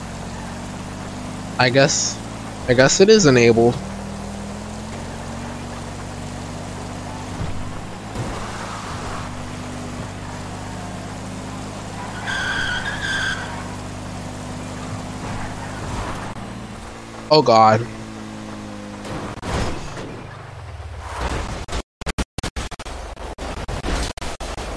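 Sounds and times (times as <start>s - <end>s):
car engine droning in a driving video game: 0.0s - 21.3s
car tyres skidding while drifting in a driving video game: 0.0s - 21.8s
speech: 1.6s - 3.9s, 17.3s - 18.0s
high-pitched tyre squeal in a driving video game: 2.6s - 16.4s.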